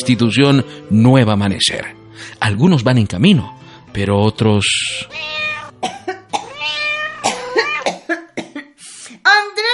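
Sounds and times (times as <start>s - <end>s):
speech: 0.0s - 6.0s
cat meowing: 5.0s - 5.8s, 6.4s - 7.9s.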